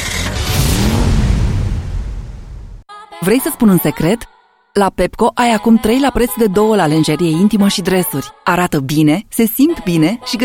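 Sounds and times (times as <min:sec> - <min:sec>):
car engine revving as it drives off: 0:00.0 - 0:01.2
speech: 0:03.2 - 0:10.4.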